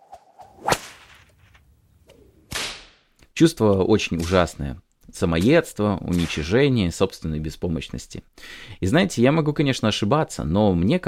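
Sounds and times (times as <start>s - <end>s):
self-flagellation whip lashing a person's own back: 0.4s - 1.3s, 2.1s - 3.0s
speech: 3.4s - 11.0s.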